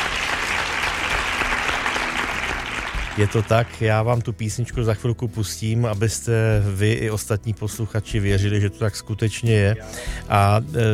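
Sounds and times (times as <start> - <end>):
applause from many hands: 0.0 - 3.8
speech: 3.2 - 10.9.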